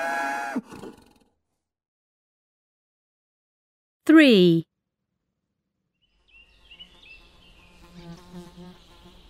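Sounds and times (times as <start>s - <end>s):
speech: 4.2s - 4.7s
bees buzzing: 6.4s - 9.2s.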